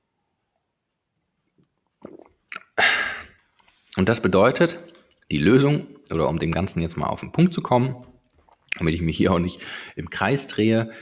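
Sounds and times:
person sipping a drink: 1.5s - 4.0s, 8.4s - 8.8s
speech: 4.0s - 8.1s, 8.8s - 11.0s.

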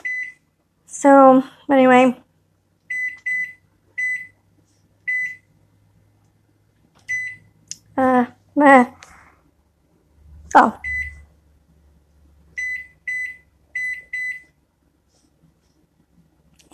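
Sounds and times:
short electronic beeps from a kitchen appliance clock being reset: 0.0s - 0.4s, 2.9s - 4.4s, 5.0s - 5.5s, 7.0s - 7.5s, 10.8s - 11.2s, 12.6s - 14.6s
speech: 1.0s - 2.2s, 10.6s - 10.8s.

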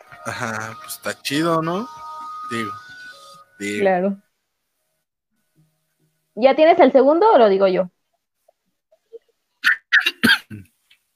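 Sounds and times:
speech: 0.2s - 2.8s, 3.6s - 4.2s, 6.4s - 8.0s
harsh coughing fit: 9.9s - 10.7s.

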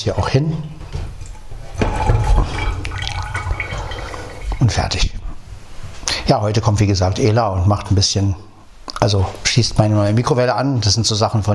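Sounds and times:
speech: 0.0s - 0.8s, 4.6s - 5.2s, 6.3s - 11.5s
water trickling and dripping: 0.2s - 5.8s
water splashing and gurgling as something is rinsed out: 0.7s - 5.7s.

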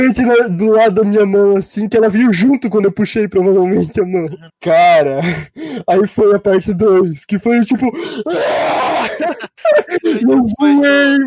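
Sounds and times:
speech: 0.0s - 11.2s
laughter: 3.8s - 5.8s, 7.8s - 11.2s
breathy groaning vocal sounds: 7.9s - 9.2s
person imitating a frightened scream: 8.0s - 10.9s.

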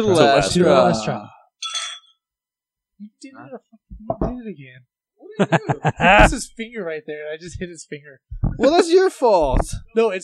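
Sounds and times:
speech: 0.0s - 1.4s, 3.0s - 10.2s
glasses clinking together in a toast: 1.6s - 2.2s
laughter: 5.3s - 6.5s.

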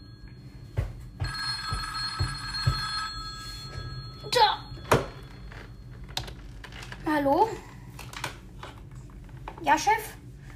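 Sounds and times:
telephone bell ringing with a bright metallic trill: 0.0s - 6.5s
speech: 7.2s - 7.7s, 9.7s - 10.2s.

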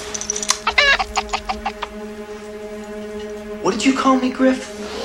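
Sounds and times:
chicken clucking sound effect: 0.6s - 2.0s
speech: 3.7s - 4.7s.

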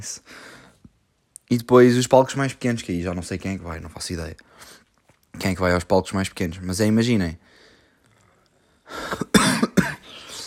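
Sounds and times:
speech: 0.0s - 0.5s, 1.5s - 4.8s, 5.4s - 7.5s
person coughing harshly with a throaty rasp: 9.0s - 10.4s.

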